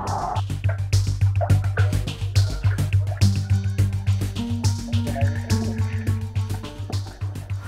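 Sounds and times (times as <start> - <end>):
clothes washed by hand in water: 0.5 - 7.6.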